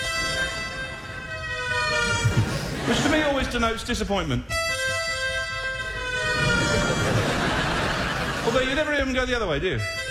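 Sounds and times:
British emergency vehicle siren wailing: 0.0s - 2.8s, 5.8s - 8.4s
laughter: 2.0s - 3.6s, 6.2s - 9.1s
speech: 2.9s - 4.6s, 8.5s - 10.0s.

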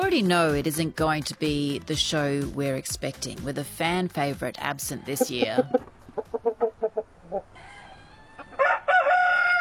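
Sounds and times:
speech: 0.1s - 6.0s
chicken clucking: 4.9s - 9.4s
rooster crowing: 6.5s - 9.5s.

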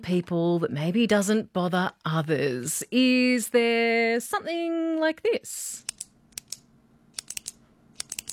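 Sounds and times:
speech: 0.0s - 5.9s
pen clicking: 7.2s - 8.3s.

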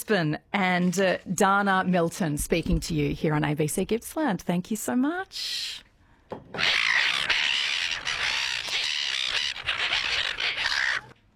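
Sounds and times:
speech: 0.1s - 6.9s
chorus of seagulls squawking: 6.6s - 11.2s.

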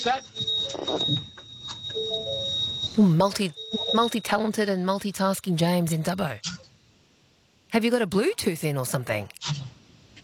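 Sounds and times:
speech: 0.0s - 1.3s, 3.0s - 6.5s, 7.7s - 9.6s
high-pitched trolley ramp electronic warning tone: 0.0s - 5.1s.

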